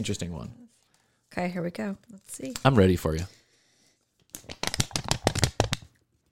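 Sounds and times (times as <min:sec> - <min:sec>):
speech: 0:00.0 - 0:03.4
paper rustling and crinkling: 0:04.4 - 0:05.9.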